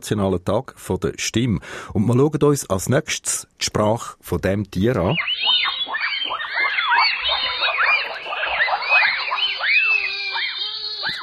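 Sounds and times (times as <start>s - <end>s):
speech: 0.0s - 6.0s
chorus of bonobo whoops and squeals: 5.0s - 11.2s.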